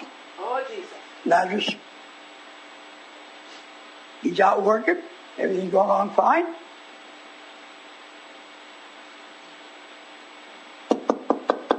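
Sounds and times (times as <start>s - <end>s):
speech: 0.7s - 2.0s, 4.2s - 6.7s
knocking on a door: 10.9s - 11.7s.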